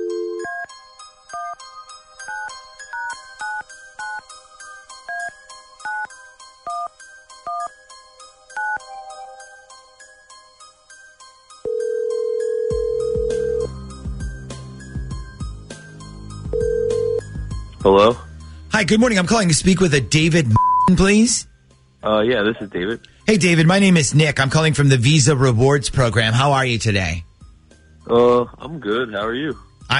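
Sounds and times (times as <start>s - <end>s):
telephone ringing tone: 0.0s - 0.7s, 11.6s - 13.7s, 16.5s - 17.2s
speech: 17.8s - 18.2s, 18.8s - 27.3s, 28.1s - 29.9s.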